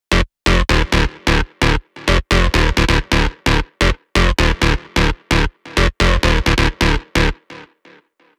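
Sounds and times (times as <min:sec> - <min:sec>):
wet techno synth loop: 0:00.1 - 0:07.6.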